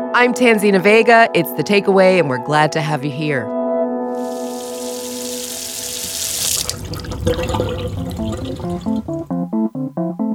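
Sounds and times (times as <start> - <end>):
speech: 0.1 - 3.5
water running from a tap: 4.1 - 9.4
soft melodic music with plucked stepping notes: 8.2 - 10.3.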